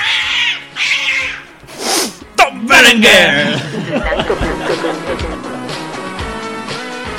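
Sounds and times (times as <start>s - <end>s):
cat giving drawn-out strained meows with a yowling edge: 0.0s - 1.6s
laughter: 3.3s - 6.3s.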